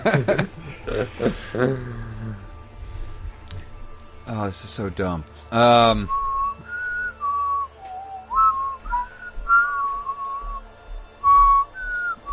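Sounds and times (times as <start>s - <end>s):
speech: 0.0s - 0.4s, 1.2s - 2.1s, 4.5s - 6.2s
laughter: 0.0s - 2.4s
faint low rumble: 0.0s - 12.3s
person whistling a wandering tuneless melody: 6.1s - 10.6s, 11.2s - 12.3s.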